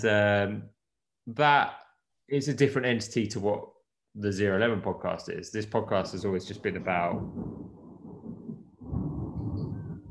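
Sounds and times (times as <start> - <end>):
speech: 0.0 - 7.8
low rolling thunder outdoors: 6.1 - 10.0.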